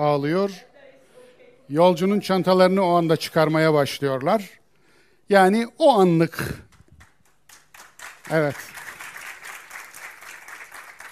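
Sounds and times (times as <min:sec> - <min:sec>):
speech: 0:00.0 - 0:00.7, 0:01.7 - 0:04.6, 0:05.3 - 0:06.7, 0:08.3 - 0:08.8
audience applause: 0:07.0 - 0:11.1.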